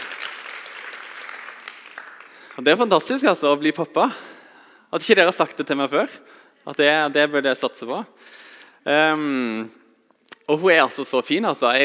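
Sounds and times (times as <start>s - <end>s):
audience applause: 0.0s - 2.7s
speech: 2.6s - 4.3s, 4.9s - 9.8s, 10.5s - 11.8s.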